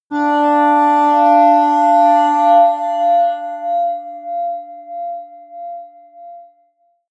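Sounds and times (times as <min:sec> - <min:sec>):
high atmospheric feedback synthesizer drones: 0:00.1 - 0:04.2.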